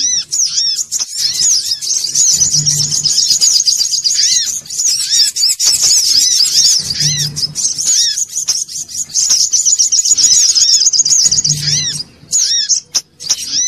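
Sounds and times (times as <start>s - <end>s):
little spiderhunter singing shrill chips and curved notes: 0.3s - 12.8s
short low hum: 2.1s - 3.6s, 6.6s - 8.0s.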